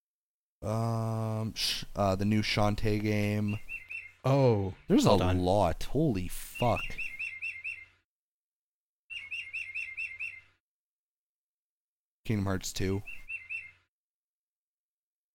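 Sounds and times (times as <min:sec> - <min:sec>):
speech: 0:00.6 - 0:07.1, 0:12.3 - 0:13.2
clock bird-song chime: 0:06.6 - 0:07.9, 0:09.1 - 0:10.5, 0:13.2 - 0:13.8.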